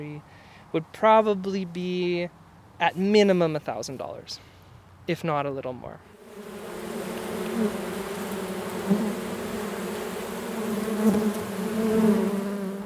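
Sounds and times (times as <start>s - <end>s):
speech: 0.0s - 4.5s, 5.1s - 6.6s, 7.6s - 7.9s, 8.9s - 9.2s, 11.1s - 11.4s
honeybees buzzing around Langstroth box hives during a hive inspection: 6.1s - 12.8s.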